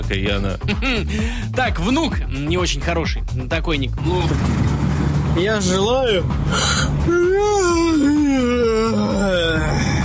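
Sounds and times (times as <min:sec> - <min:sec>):
speech: 0:00.1 - 0:04.8, 0:05.4 - 0:09.8
person yawning with a moaning voiced tone: 0:06.5 - 0:10.0.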